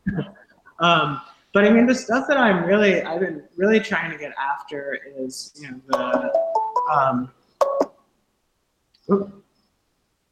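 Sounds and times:
speech: 0:00.2 - 0:07.4, 0:09.1 - 0:09.4
odd electronic ringing on a telephone line: 0:06.0 - 0:07.9.

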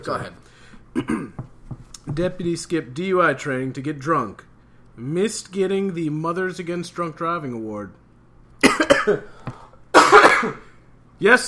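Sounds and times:
speech: 0:00.0 - 0:01.5, 0:02.1 - 0:08.0, 0:08.7 - 0:09.4, 0:10.4 - 0:10.6, 0:11.2 - 0:11.4
man coughing: 0:00.9 - 0:01.4, 0:08.6 - 0:10.8.

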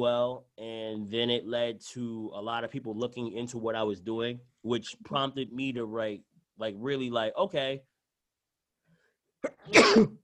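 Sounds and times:
speech: 0:00.0 - 0:07.9, 0:09.4 - 0:10.2
adult sneezing into the arm beside a baby: 0:09.4 - 0:10.2.

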